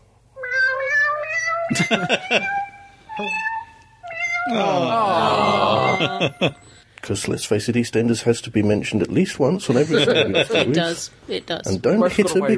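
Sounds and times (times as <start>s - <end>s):
electronic cat meows from a cat piano app on a phone: 0.4s - 6.6s
laughter: 1.7s - 2.4s, 4.5s - 6.6s, 9.6s - 11.0s
speech: 1.7s - 2.6s, 3.2s - 3.5s, 4.4s - 12.5s.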